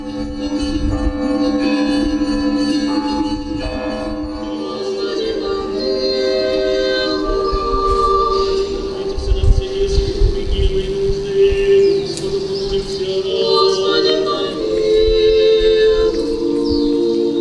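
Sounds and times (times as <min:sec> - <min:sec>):
Russian Orthodox convent church bells ringing for the liturgy: 0:00.0 - 0:17.3
nuns' voices chanting a prayer: 0:00.0 - 0:17.3
birds chirping and twittering: 0:03.7 - 0:17.3.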